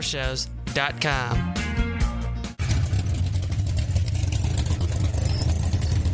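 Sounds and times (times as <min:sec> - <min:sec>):
speech: 0:00.0 - 0:01.7
American V8 engine revving: 0:02.6 - 0:06.1.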